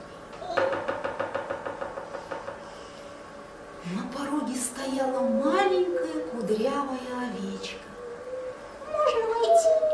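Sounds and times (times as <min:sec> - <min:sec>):
faint steady hum: 0:00.0 - 0:09.9
knocking on a door: 0:00.5 - 0:02.7
speech: 0:06.4 - 0:07.8.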